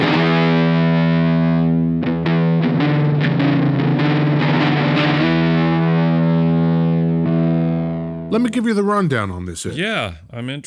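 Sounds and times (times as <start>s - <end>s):
heavily distorted Silvertone 1446 electric guitar chords: 0.0s - 8.4s
speech: 8.4s - 10.6s.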